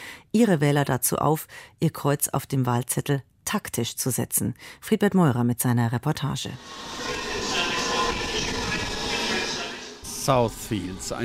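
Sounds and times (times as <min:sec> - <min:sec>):
speech: 0:00.4 - 0:07.2, 0:10.3 - 0:11.2
train rumbling through a railway station in west London: 0:06.6 - 0:11.2.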